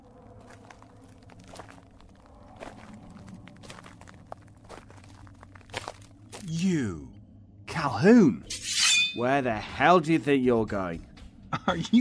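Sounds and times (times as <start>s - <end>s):
footsteps with soft crunchy thuds: 0.1s - 6.5s
speech: 6.5s - 7.1s, 7.8s - 8.5s, 9.2s - 11.1s, 11.7s - 11.9s.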